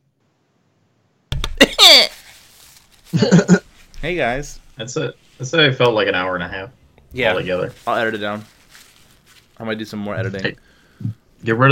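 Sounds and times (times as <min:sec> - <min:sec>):
person blowing nose: 0:01.6 - 0:03.7
speech: 0:03.1 - 0:08.6, 0:09.6 - 0:11.6.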